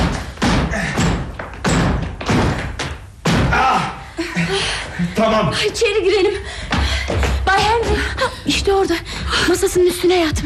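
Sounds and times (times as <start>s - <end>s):
locked door being forced and broken down: 0.0s - 3.9s
speech: 5.2s - 6.8s, 7.5s - 10.4s.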